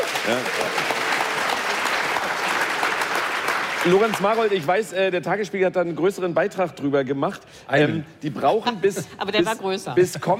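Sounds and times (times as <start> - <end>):
dense applause from a sizable audience in Berlin: 0.0 - 4.9
speech: 0.2 - 0.9, 3.8 - 10.3.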